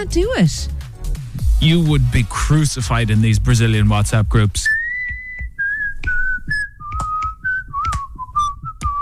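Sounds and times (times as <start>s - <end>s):
speech: 0.0s - 0.8s, 1.6s - 4.8s
soft low thumps: 1.2s - 9.0s
person whistling a melody: 4.6s - 9.0s.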